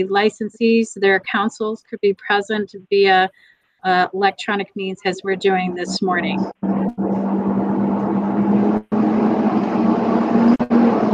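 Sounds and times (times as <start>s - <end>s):
speech: 0.0s - 7.0s
truck engine rumbling: 5.6s - 11.1s.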